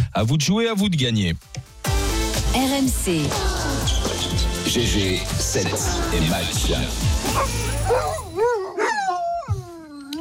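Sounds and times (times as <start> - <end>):
speech: 0.2 - 1.6, 2.5 - 8.2
dog howling with a bark-like burst: 7.2 - 9.7.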